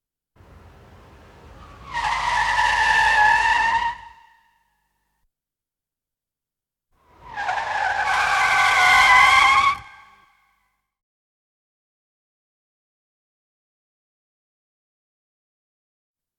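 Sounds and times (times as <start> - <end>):
vehicle braking: 1.4 - 4.4, 7.1 - 10.2.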